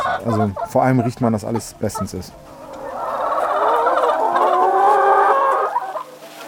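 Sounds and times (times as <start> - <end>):
laying hens clucking and chattering in a barn: 0.0 - 6.4
speech: 0.2 - 2.6.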